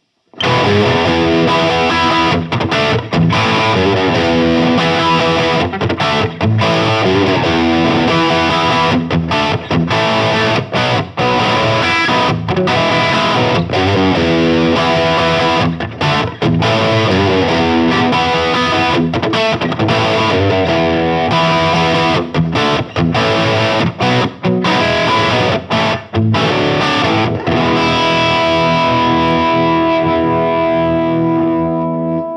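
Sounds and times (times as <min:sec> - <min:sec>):
guitar amplifier crunch tone: 0:00.3 - 0:32.3.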